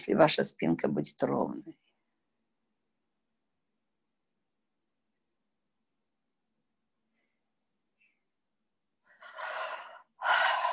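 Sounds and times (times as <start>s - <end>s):
speech: 0.0s - 1.9s
deep breath in and out during a seated relaxation exercise: 9.0s - 10.7s.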